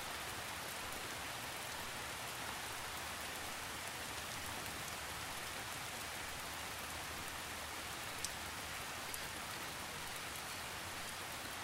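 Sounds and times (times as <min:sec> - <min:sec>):
rain pattering on wet forest leaves: 0:00.0 - 0:11.6.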